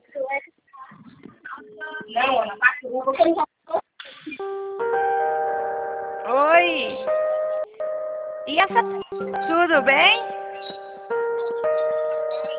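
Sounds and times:
speech: 2.4 - 3.5, 8.7 - 10.3
phone ringing with an incoming video call: 4.4 - 12.5.

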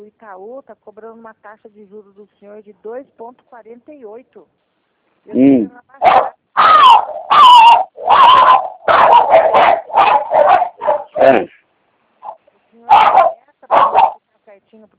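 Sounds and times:
speech: 0.1 - 4.6, 5.2 - 6.3, 11.2 - 11.6, 14.6 - 14.9
dog barking and yipping: 5.3 - 11.5, 12.2 - 14.2.

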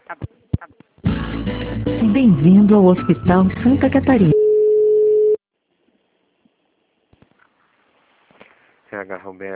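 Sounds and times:
speech: 0.1 - 4.3
telephone busy tone beep after a dropped call on a hospital phone line: 4.3 - 5.4
soft rustles: 7.2 - 9.0.

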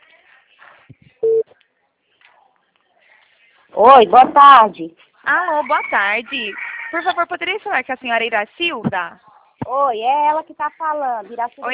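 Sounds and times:
telephone line tone while a call is being placed: 1.2 - 1.4
speech: 3.8 - 11.7.

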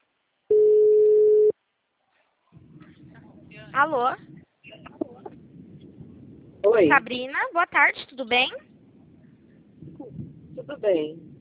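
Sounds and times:
telephone ringback tone while calling a customer from a bank: 0.5 - 1.5
speech: 3.8 - 4.3, 6.7 - 8.7, 10.6 - 11.3.

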